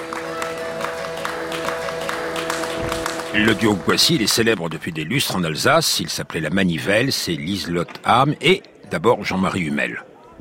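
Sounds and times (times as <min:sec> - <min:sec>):
audience applause at a concert of peace songs in an Alsace village: 0:00.0 - 0:04.7
faint tonal hum: 0:00.0 - 0:04.9
speech: 0:03.3 - 0:10.1.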